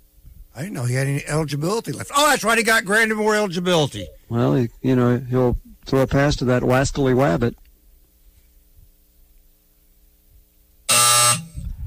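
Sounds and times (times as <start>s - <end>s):
speech: 0.6s - 7.6s
harsh electronic buzzer: 10.9s - 11.7s.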